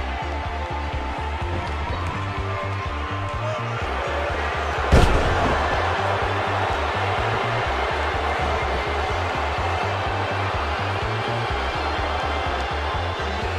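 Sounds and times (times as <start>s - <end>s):
loud steady crowd roar at a wrestling tag match: 0.0s - 13.5s
wrestling scissors kick landing in the ring during a tag match: 4.9s - 6.0s.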